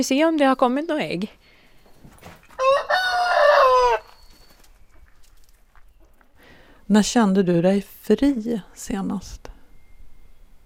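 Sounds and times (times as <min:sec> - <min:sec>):
speech: 0:00.0 - 0:01.5, 0:06.9 - 0:09.5
rooster crowing among hens: 0:02.6 - 0:04.4.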